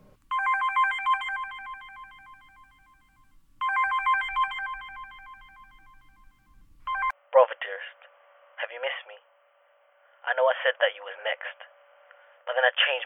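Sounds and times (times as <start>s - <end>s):
mobile phone ringing with a warbling electronic ringtone: 0.3s - 7.1s
speech: 10.6s - 11.7s, 12.6s - 13.0s.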